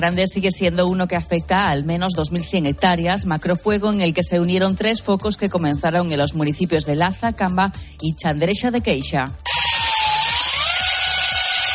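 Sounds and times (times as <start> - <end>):
speech: 0.0 - 9.5
chainsaws cutting firebreak lines: 9.5 - 11.7.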